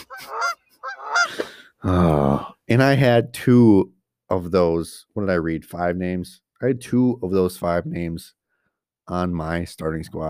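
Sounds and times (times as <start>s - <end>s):
goose honking: 0.0s - 1.4s
speech: 2.7s - 8.4s, 9.1s - 10.2s.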